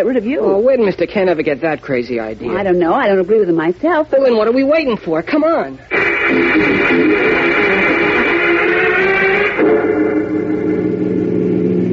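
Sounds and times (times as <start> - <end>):
speech: 0.0 - 7.3
car engine droning while cruising: 6.2 - 11.9.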